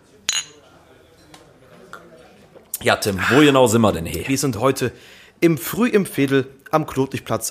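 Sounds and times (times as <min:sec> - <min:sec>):
beer glasses of Kölsch clinking in a toast in a pub: 0:00.3 - 0:00.7
speech: 0:02.8 - 0:07.5.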